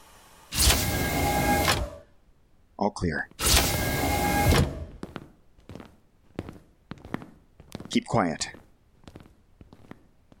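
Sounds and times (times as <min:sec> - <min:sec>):
motorized door sliding open: 0:00.0 - 0:02.1, 0:03.4 - 0:05.0
speech: 0:02.8 - 0:03.4, 0:07.9 - 0:08.6.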